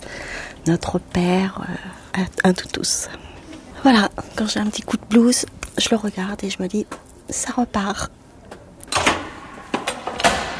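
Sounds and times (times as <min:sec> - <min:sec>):
speech: 0:00.7 - 0:08.2
clunks and rattles: 0:08.9 - 0:10.5
door opening: 0:08.9 - 0:10.5.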